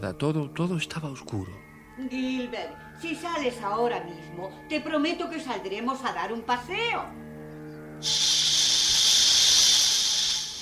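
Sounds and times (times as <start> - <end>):
speech: 0.0 - 7.2, 8.0 - 8.4
Brazilian boa hissing: 8.0 - 10.5.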